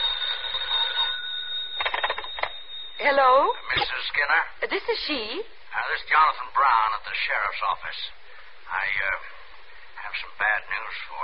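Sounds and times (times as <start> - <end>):
telephone ringing: 0.0 - 4.2
speech: 3.0 - 9.4, 10.1 - 11.2.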